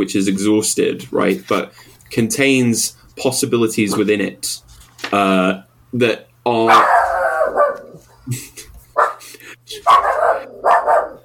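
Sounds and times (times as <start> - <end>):
speech: 0.0 - 7.0, 8.3 - 8.6, 9.7 - 11.2
dog barking through a call participant's microphone: 6.7 - 8.0, 9.0 - 9.2, 9.8 - 11.2.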